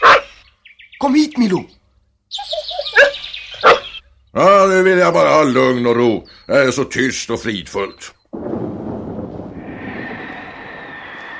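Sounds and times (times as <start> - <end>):
speech: 1.0 - 2.4, 4.4 - 8.2
deep steady thunder rumbling: 8.3 - 11.3
faint higher hiss: 9.4 - 11.3.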